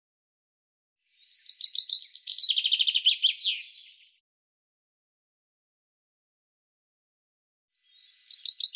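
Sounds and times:
common chaffinch singing descending trill: 1.2s - 4.0s, 7.9s - 8.7s.

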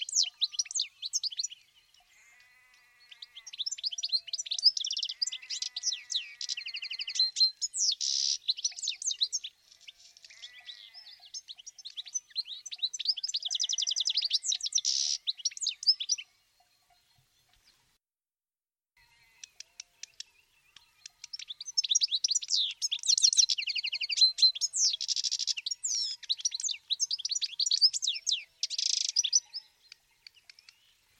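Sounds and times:
bird chirping: 0.0s - 18.0s, 19.0s - 31.1s.

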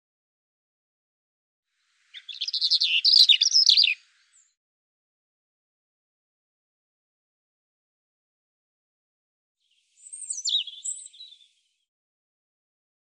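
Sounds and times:
European robin song of rattling notes and thin whistles: 1.8s - 4.6s, 9.6s - 11.8s.

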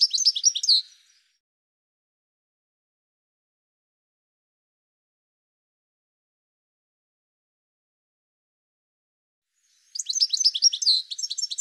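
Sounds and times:
bird giving high sharp chirps and twittering: 0.0s - 1.4s, 9.6s - 11.6s.

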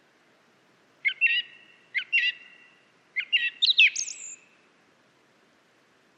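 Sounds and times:
faint background hiss: 0.0s - 6.1s
song thrush singing: 1.0s - 4.7s.

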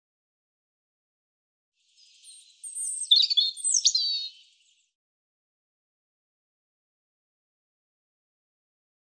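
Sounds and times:
European robin singing: 1.9s - 4.9s.

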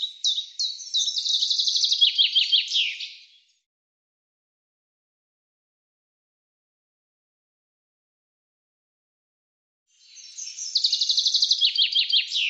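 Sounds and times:
common chaffinch song: 0.0s - 3.6s, 9.9s - 12.4s.

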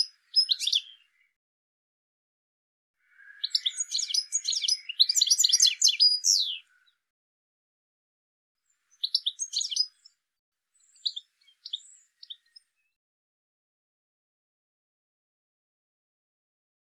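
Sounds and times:
bird chirps and twitters: 0.0s - 1.4s, 3.0s - 7.0s, 8.7s - 10.2s, 10.8s - 12.9s.

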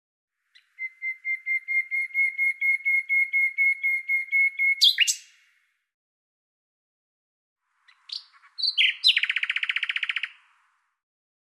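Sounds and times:
common nightingale song: 0.5s - 5.6s, 7.8s - 10.6s.

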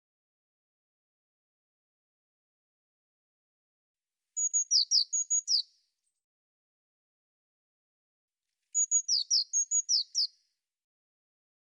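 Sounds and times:
Eurasian blue tit calls of high thin notes and down-slurred chips: 4.4s - 5.7s, 8.8s - 10.3s.

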